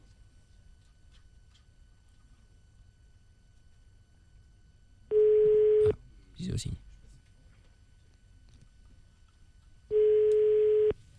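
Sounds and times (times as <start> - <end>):
ringback tone on a telephone line: 5.1 - 5.9, 9.9 - 11.0
speech: 6.6 - 6.9.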